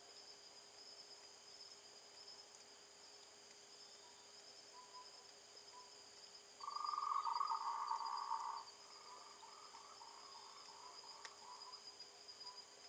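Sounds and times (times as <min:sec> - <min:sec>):
frog trilling: 0:06.6 - 0:11.8.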